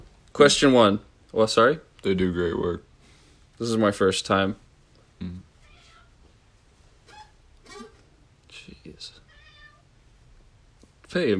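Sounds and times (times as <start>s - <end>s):
speech: 0.4s - 2.9s, 3.6s - 4.6s, 11.1s - 11.3s
cat meowing in drawn-out wavering cries: 5.6s - 6.2s, 9.2s - 9.9s.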